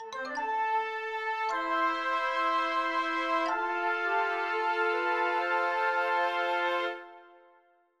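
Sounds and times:
victory music: 0.1 - 7.0.

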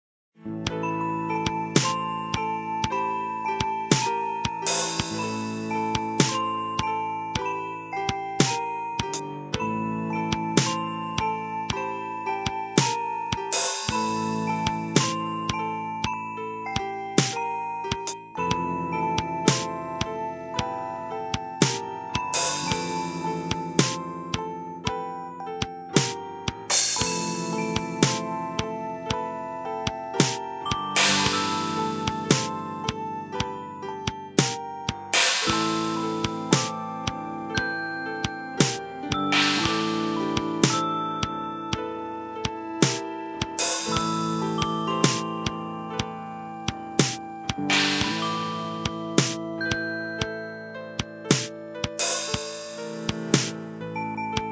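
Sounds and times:
music with drum and crystal: 0.4 - 54.5
drum: 10.6 - 10.8, 12.8 - 15.2, 19.5 - 19.7, 23.5 - 24.0, 26.0 - 28.3, 30.2 - 32.6, 34.4 - 36.8, 38.6 - 40.8, 45.0 - 45.6, 47.0 - 49.4, 51.3 - 53.6.

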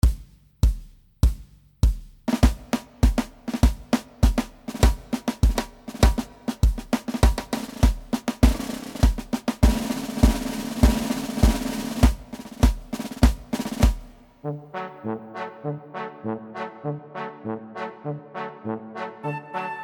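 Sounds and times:
two-step march music: 0.0 - 14.4.

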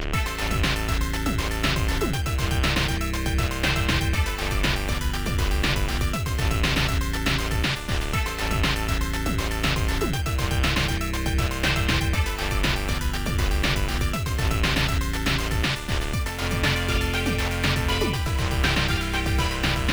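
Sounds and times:
electronic bleep bloop sounds: 0.1 - 19.9.

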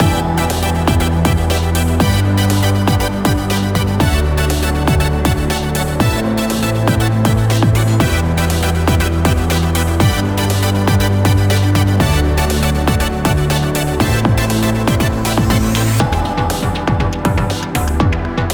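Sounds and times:
sci-fi puzzle title music: 0.0 - 18.4.

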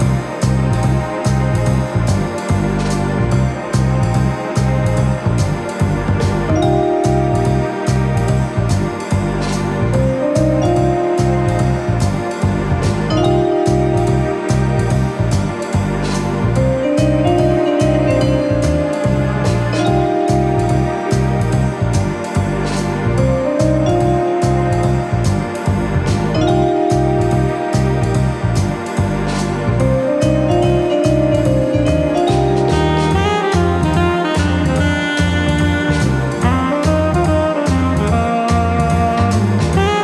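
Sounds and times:
loopable dungeon theme game music: 0.0 - 40.0.

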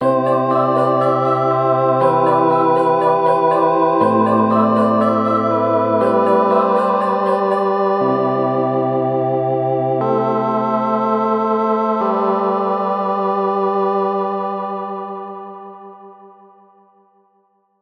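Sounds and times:
musical stinger made with sound effects and loops: 0.0 - 8.3
keyboards: 0.0 - 15.2.

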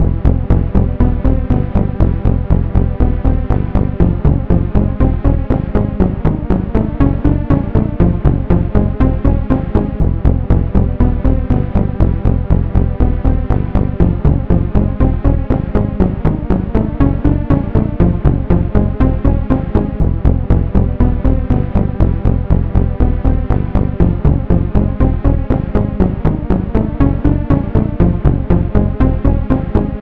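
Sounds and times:
synth loop: 0.4 - 29.6.

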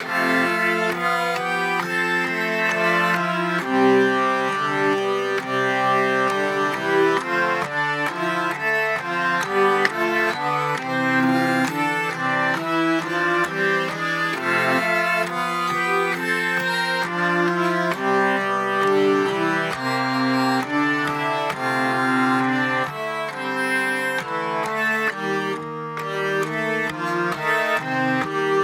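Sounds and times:
hurdy gurdy lullaby loop: 0.0 - 28.6.

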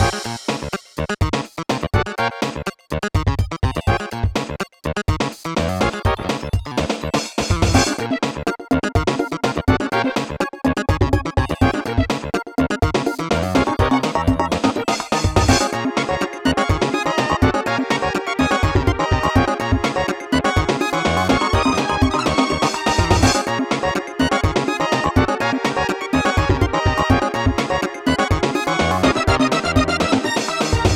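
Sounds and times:
funky action game music loop: 0.0 - 30.9.

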